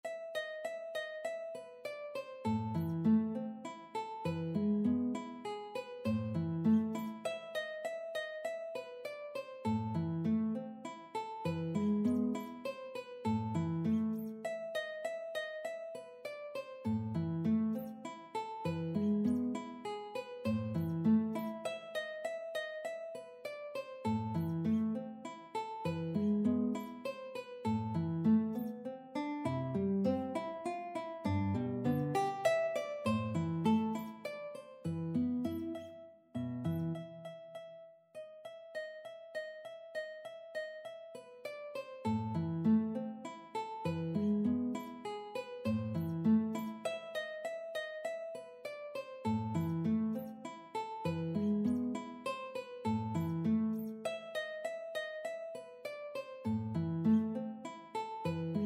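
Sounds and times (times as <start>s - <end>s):
guitar: 0.0s - 58.6s
mandolin: 0.0s - 58.6s.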